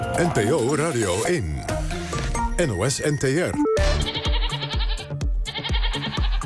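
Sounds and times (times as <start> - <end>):
speech: 0.2 - 1.7, 2.6 - 4.1
goats bleating in Gelderland in the Netherlands: 3.8 - 6.4.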